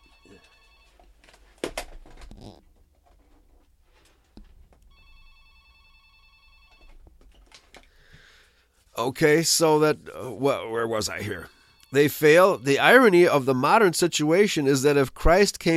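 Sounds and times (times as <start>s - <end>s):
telephone ringing with an electronic trill: 0.0s - 1.2s, 4.9s - 7.1s, 9.6s - 14.5s
speech: 9.0s - 15.7s.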